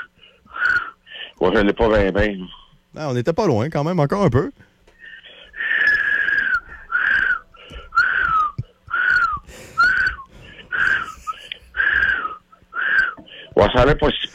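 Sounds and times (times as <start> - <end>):
speech: 1.4 - 4.7, 13.8 - 14.3
person whistling short breathy notes: 5.8 - 13.2.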